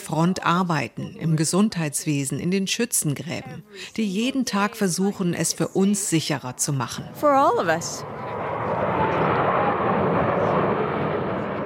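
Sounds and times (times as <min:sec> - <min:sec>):
speech: 0:00.1 - 0:08.3
jets flying over in formation: 0:05.6 - 0:11.6.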